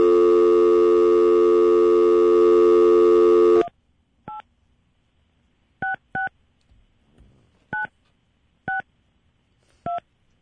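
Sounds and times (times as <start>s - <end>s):
loud steady phone tone: 0.0s - 3.7s.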